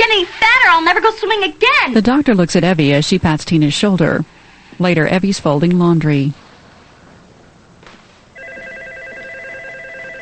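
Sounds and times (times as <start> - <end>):
speech: 0.4 - 6.4
telephone ringing with an electronic ring tone: 8.4 - 10.2.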